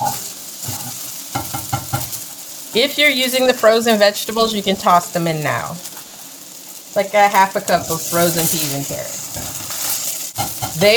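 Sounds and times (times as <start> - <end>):
utensil scraping against the pan while stirring rice: 0.0 - 2.3, 7.7 - 10.9
rice frying and sizzling in a pan: 0.0 - 10.9
speech: 2.8 - 5.9, 7.0 - 9.5, 10.8 - 10.9.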